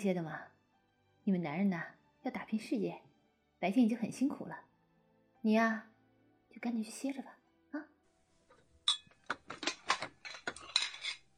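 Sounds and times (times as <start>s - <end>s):
speech: 0.0s - 0.6s, 1.2s - 4.7s, 5.4s - 5.9s, 6.6s - 7.9s
stack of bowls and chopsticks clinking while being carried: 8.9s - 11.3s.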